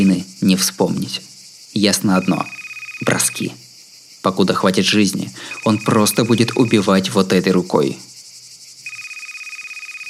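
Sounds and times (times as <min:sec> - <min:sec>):
speech: 0:00.0 - 0:03.6, 0:04.2 - 0:08.1
mobile phone ringtone with rapid pulsing electronic trill: 0:02.2 - 0:03.4, 0:05.5 - 0:07.0, 0:08.8 - 0:10.0.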